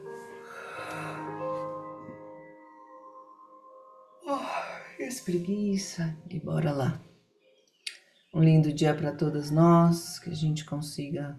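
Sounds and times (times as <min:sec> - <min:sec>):
slow deep breath in and out during a guided meditation: 0:00.4 - 0:01.6
speech: 0:05.0 - 0:07.1, 0:08.4 - 0:11.3.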